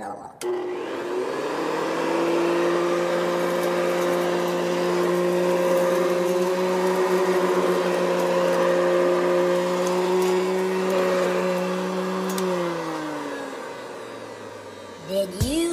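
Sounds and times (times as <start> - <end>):
vacuum cleaner running: 0.4 - 15.7.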